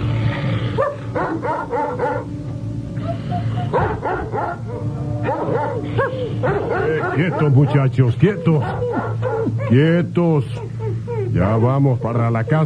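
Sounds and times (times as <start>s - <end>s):
steady low hum: 0.0s - 12.6s
several dogs barking excitedly with higher yips: 0.7s - 2.4s, 3.6s - 11.5s
speech: 7.2s - 10.7s, 11.3s - 12.6s.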